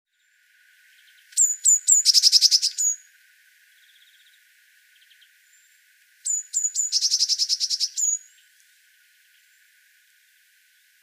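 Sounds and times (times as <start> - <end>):
Eurasian blue tit Cyanistes caeruleus calls: 1.0 - 3.0, 6.2 - 8.4.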